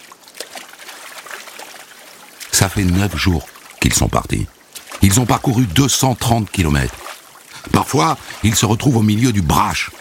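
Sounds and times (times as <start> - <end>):
water trickling and splashing as a kayak is pushed in among ice: 0.0 - 9.9
speech: 2.6 - 7.0, 7.6 - 9.9.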